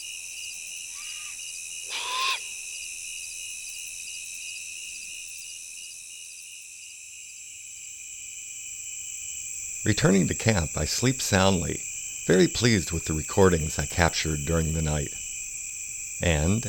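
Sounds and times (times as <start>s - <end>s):
high-pitched insects trilling on the prairie in late summer: 0.0s - 16.6s
immature great horned owl giving a raspy hissing screech at night on the prairie: 0.9s - 2.6s
speech: 9.8s - 15.2s, 16.2s - 16.6s.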